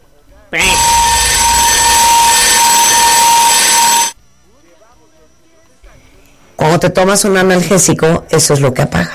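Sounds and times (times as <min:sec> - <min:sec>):
harsh electronic alarm blaring: 0:00.6 - 0:04.2
speech: 0:06.8 - 0:09.1.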